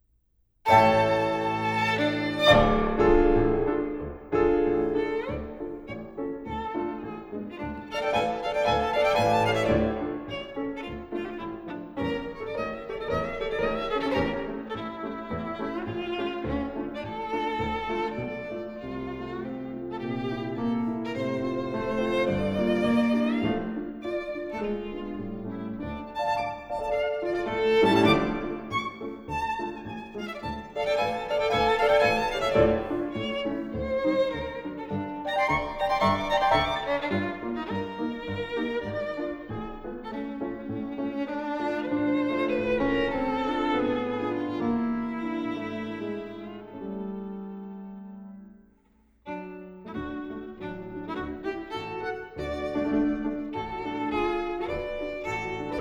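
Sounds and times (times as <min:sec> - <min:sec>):
violin and piano piece: 0:00.7 - 0:55.7.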